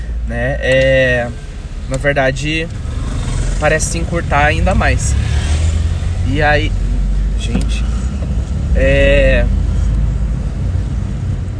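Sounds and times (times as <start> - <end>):
car driving through city traffic: 0.0 - 11.5
speech: 0.3 - 2.9, 3.6 - 5.4, 6.3 - 6.8, 7.4 - 7.9, 8.8 - 9.6.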